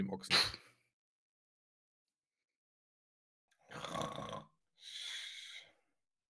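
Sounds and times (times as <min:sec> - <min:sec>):
speech: 0:00.0 - 0:00.6
person imitating loud rasping snoring: 0:03.7 - 0:04.5.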